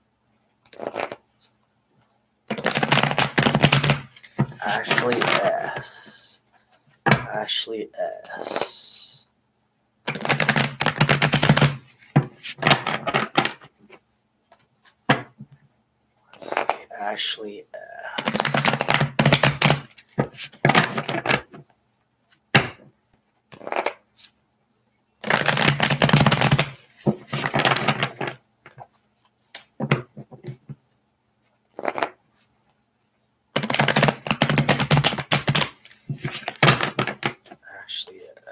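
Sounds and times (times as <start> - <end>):
deck of tarot cards being riffle shuffled: 0.7 - 1.2, 2.5 - 6.2, 8.3 - 8.9, 10.1 - 15.0, 16.3 - 16.9, 18.2 - 21.6, 23.5 - 24.4, 25.2 - 28.9, 31.7 - 32.2, 33.6 - 37.5
tarot card deck tapping: 2.5 - 5.5, 10.1 - 13.5, 18.2 - 21.2, 33.6 - 37.2
speech: 4.7 - 6.2, 7.3 - 8.9, 17.2 - 18.4.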